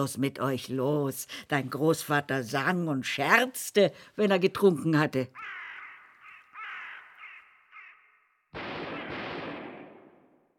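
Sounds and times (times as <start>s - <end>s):
speech: 0.0s - 5.6s
ravens cawing: 5.4s - 8.5s
gunshot blast: 8.5s - 10.5s.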